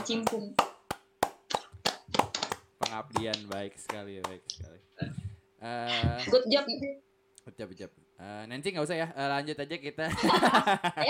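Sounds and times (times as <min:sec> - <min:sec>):
speech: 0:00.0 - 0:00.6, 0:02.9 - 0:11.0
hand claps: 0:00.0 - 0:04.6
laughter: 0:10.1 - 0:11.0.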